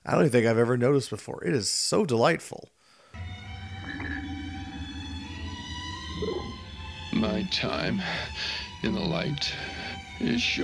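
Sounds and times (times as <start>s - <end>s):
speech: 0.1s - 2.8s, 7.2s - 10.6s
slow mournful string arrangement of a theme melody: 3.2s - 10.6s.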